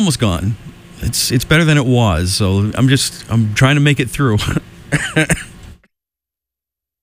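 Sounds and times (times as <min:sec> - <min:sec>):
speech: 0:00.0 - 0:05.5
person clearing throat: 0:04.4 - 0:05.6
person coughing: 0:04.4 - 0:05.6.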